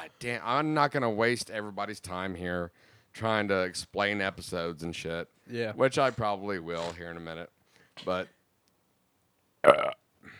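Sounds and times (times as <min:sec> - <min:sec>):
speech: 0:00.0 - 0:08.4, 0:09.6 - 0:10.0
wet gurgly burp: 0:09.6 - 0:10.3.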